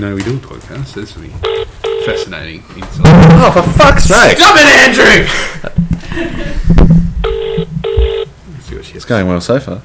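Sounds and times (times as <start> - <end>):
speech: 0.0 - 7.0, 8.9 - 9.8
ringback tone of an outgoing phone call: 1.4 - 2.3, 7.2 - 8.3.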